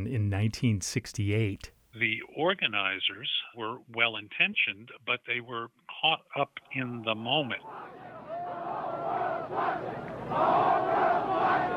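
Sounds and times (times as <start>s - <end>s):
speech: 0.0s - 8.1s, 9.5s - 11.7s
large protest crowd chanting a rhythmic slogan in unison: 7.6s - 11.7s.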